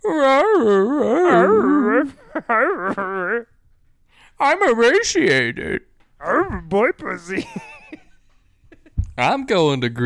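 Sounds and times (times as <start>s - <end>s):
voice imitating a dog whimpering and yipping: 0.0s - 3.5s, 6.2s - 6.7s
speech: 0.1s - 3.6s, 4.3s - 7.7s, 9.2s - 10.0s
laughter: 1.3s - 3.5s, 6.5s - 9.2s.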